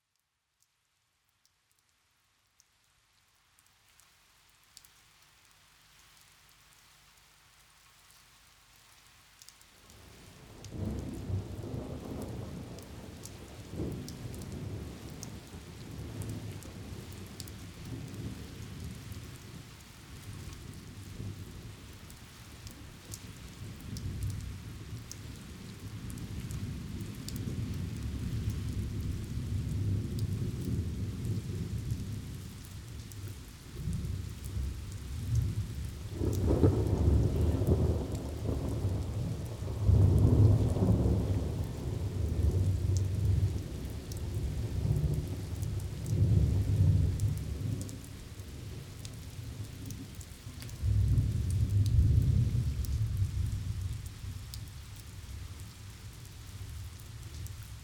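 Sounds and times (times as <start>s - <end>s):
thunderstorm in the fields: 10.6s - 19.0s, 23.6s - 32.5s, 33.8s - 50.2s, 50.8s - 54.4s.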